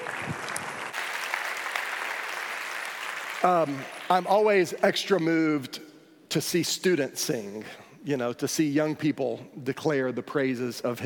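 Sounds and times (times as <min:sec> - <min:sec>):
audience applause for singing students: 0:00.0 - 0:04.1
speech: 0:03.4 - 0:11.0.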